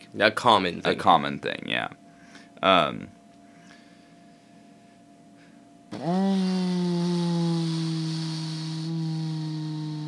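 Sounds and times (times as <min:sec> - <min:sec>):
speech: 0:00.1 - 0:02.0, 0:02.6 - 0:03.2, 0:05.9 - 0:08.0
man's voice imitating a vacuum cleaner: 0:05.9 - 0:10.0.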